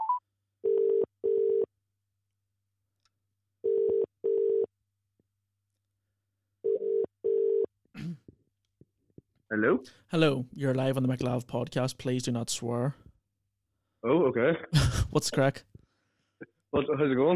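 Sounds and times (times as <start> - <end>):
telephone ringback tone on an outgoing call: 0.0 - 1.7, 3.6 - 4.7, 6.6 - 7.7
speech: 9.6 - 13.0, 14.0 - 15.7, 16.8 - 17.3.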